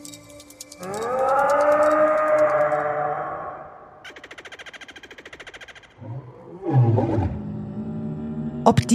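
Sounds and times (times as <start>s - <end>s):
huge dinosaur roaring with a long deep bellow: 0.8s - 3.8s, 6.0s - 8.7s.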